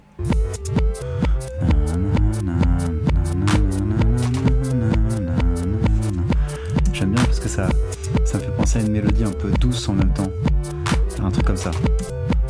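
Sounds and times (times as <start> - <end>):
music played backwards with pulsing beat and wobbling bass line: 0.0 - 12.4
speech: 7.6 - 7.9, 8.7 - 10.6, 11.2 - 12.2.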